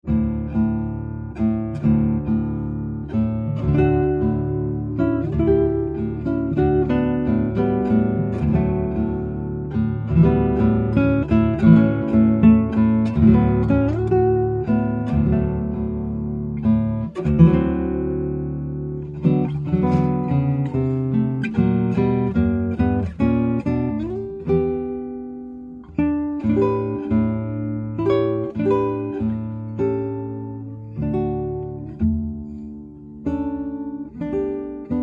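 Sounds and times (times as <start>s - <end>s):
guitars: 0.0s - 35.0s.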